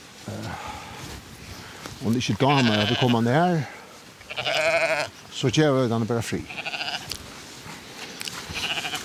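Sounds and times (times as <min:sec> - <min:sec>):
speech: 0:02.0 - 0:03.8, 0:05.4 - 0:06.6
young lamb bleating: 0:02.4 - 0:03.3, 0:04.2 - 0:05.2, 0:06.4 - 0:07.2, 0:08.5 - 0:09.0.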